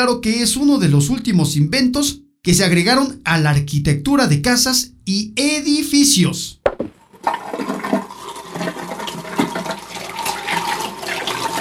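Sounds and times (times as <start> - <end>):
speech: 0.0 - 7.8
toilet flushing: 7.0 - 11.5.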